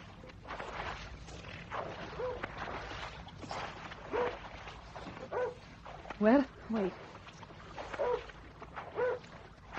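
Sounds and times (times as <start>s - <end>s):
low ambient hum: 0.0s - 9.7s
oars dipping and pulling through water: 0.0s - 9.7s
dog barking: 2.1s - 2.5s, 4.1s - 4.4s, 5.2s - 5.7s, 7.8s - 9.3s
speech: 6.2s - 7.0s.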